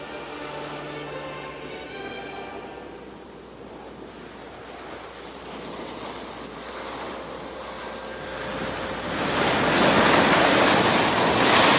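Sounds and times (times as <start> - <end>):
ocean waves crashing against the rock of a lighthouse: 3.9 - 11.7.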